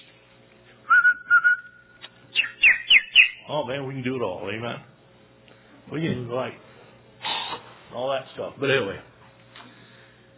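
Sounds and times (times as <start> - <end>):
person whistling a short tune: 0.9 - 1.9
speech: 3.5 - 4.9, 5.9 - 6.7, 7.9 - 9.1.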